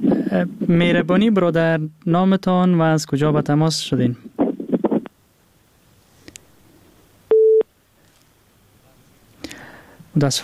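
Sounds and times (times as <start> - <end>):
speech: 0.3 - 4.3, 10.2 - 10.4
phone line busy tone after a call-in program call is disconnected: 7.3 - 7.7.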